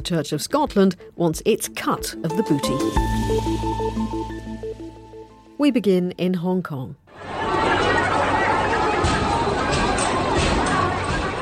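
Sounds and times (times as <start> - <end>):
speech: 0.0 - 4.3, 5.6 - 7.0
anti-government protester crowd in Hong Kong roaring and chattering: 7.1 - 11.4.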